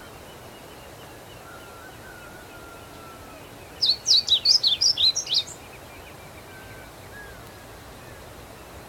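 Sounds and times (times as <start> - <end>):
steady low background hiss: 0.0 - 8.8
blue seedeater Amaurospiza concolor song of high bright sliding notes: 2.6 - 7.4.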